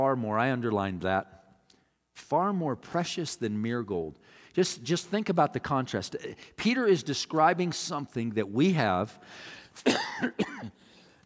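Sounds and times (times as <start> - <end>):
speech: 0.0 - 1.4, 2.2 - 10.8
man coughing at church: 9.8 - 10.9.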